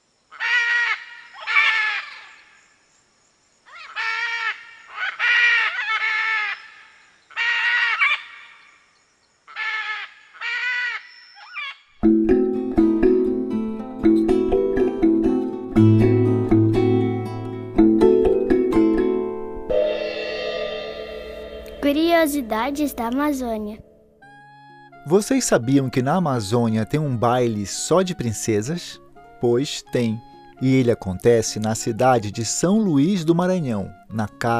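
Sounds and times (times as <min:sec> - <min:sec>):
harsh shrill macaw calls: 0:00.3 - 0:02.4, 0:03.7 - 0:08.6, 0:09.5 - 0:11.9
music: 0:12.0 - 0:34.5
speech: 0:22.3 - 0:23.8, 0:25.0 - 0:34.5.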